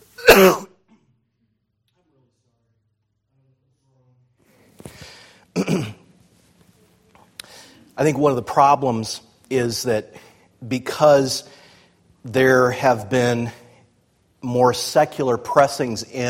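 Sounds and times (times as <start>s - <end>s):
man coughing: 0.1s - 1.0s, 5.5s - 6.0s
man clearing throat: 0.2s - 1.1s, 5.5s - 6.0s
speech: 8.0s - 11.6s, 12.2s - 13.6s, 14.4s - 16.2s.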